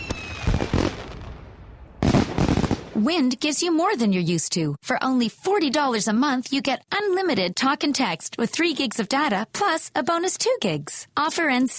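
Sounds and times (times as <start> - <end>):
thin rising firework whistle: 0.0 - 0.9
celebratory fireworks launching and bursting: 0.0 - 3.0
speech: 3.0 - 11.7.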